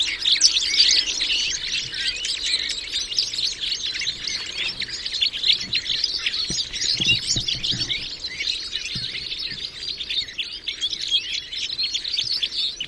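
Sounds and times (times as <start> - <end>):
red crossbill flock calls in the Rusel area: 0.1 - 12.8.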